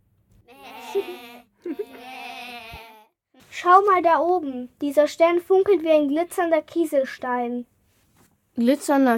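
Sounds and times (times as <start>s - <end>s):
sheep bleating on a pasture: 0.5s - 3.1s
speech: 0.9s - 1.8s, 3.6s - 7.7s, 8.6s - 9.1s.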